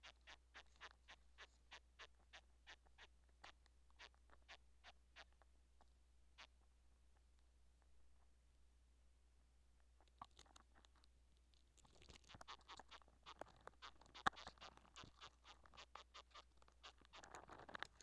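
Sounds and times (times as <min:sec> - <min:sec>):
chirping: 0:00.0 - 0:05.4, 0:11.9 - 0:18.0.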